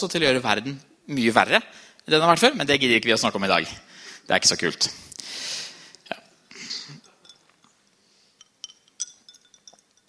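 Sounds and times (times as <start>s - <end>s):
speech: 0.0s - 5.6s
light bright clinks and tinkles of glass: 6.9s - 10.0s
soft pour into a drinking glass: 8.4s - 10.0s.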